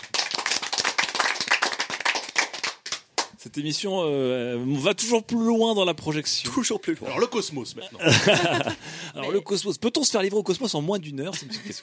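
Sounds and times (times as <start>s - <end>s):
dense rapid hand clapping from a group: 0.0s - 3.4s
speech: 3.4s - 11.8s
laughter: 8.0s - 9.2s, 11.3s - 11.8s.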